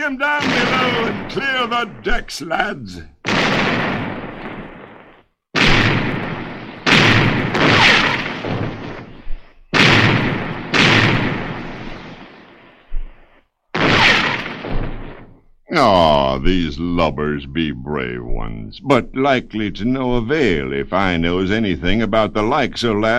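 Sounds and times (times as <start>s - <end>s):
speech: 0.0s - 3.8s, 15.7s - 23.1s
ship's cannons firing a broadside: 0.1s - 16.7s.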